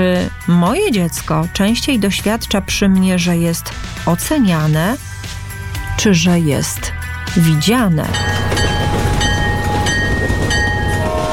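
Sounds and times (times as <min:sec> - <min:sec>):
speech: 0:00.0 - 0:05.1, 0:06.0 - 0:08.5
train rolling on rails with clickety-clack: 0:08.0 - 0:11.3
faint metallic whine of train: 0:08.1 - 0:11.3.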